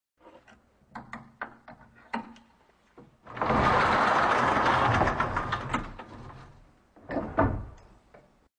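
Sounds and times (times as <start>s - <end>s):
door moving on rails: 3.3s - 7.9s.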